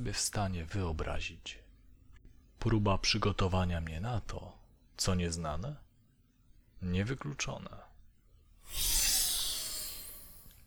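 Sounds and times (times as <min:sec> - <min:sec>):
speech: 0:00.0 - 0:01.6, 0:02.6 - 0:05.8, 0:06.8 - 0:07.9, 0:08.7 - 0:09.0
pneumatic hiss of a capsule opening: 0:08.6 - 0:10.6.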